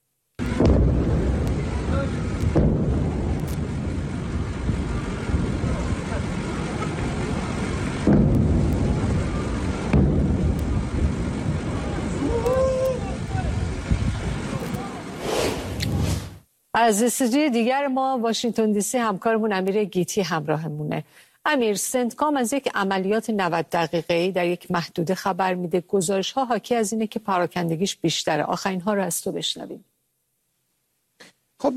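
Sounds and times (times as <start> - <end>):
constant roar of wind-like noise: 0.4 - 16.4
heavy rumbling explosions: 0.4 - 16.4
speech: 16.8 - 29.9, 31.2 - 31.7.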